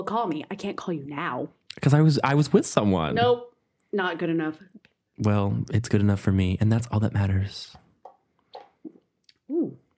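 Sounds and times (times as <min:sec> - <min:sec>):
speech: 0:00.0 - 0:07.8
person gulping wine: 0:08.0 - 0:09.5.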